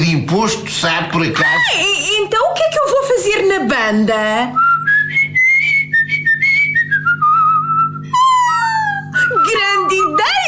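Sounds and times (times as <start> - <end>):
speech: 0.3 - 4.7
person whistling a melodic tune: 4.6 - 10.2.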